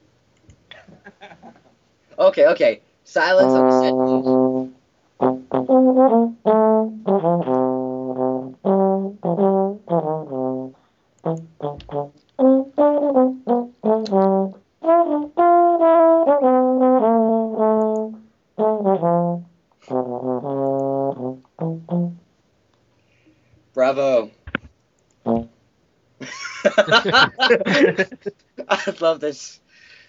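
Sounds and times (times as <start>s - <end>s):
laughter: 0.8s - 1.7s, 26.2s - 29.1s
speech: 2.2s - 4.4s, 5.9s - 6.6s, 29.0s - 29.6s
solo horn playing a lively melody live: 3.3s - 22.3s.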